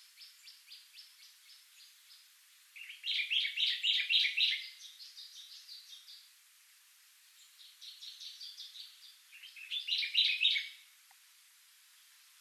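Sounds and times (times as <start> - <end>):
common chaffinch Fringilla coelebs singing: 0.0 - 6.3, 7.4 - 10.9.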